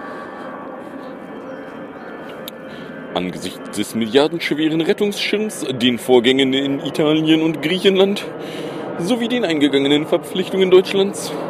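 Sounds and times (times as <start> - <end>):
airplane engine roar: 0.0 - 11.4
speech: 3.2 - 11.4.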